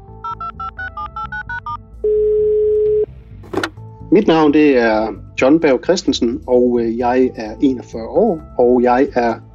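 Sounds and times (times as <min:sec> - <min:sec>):
beeping keypad dial tones: 0:00.2 - 0:03.1
speech: 0:04.1 - 0:09.5.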